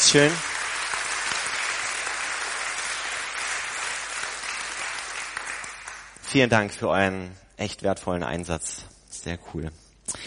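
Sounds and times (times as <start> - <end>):
sustained applause from a sizeable audience: 0.0 - 6.2
speech: 0.1 - 0.5, 6.3 - 10.2.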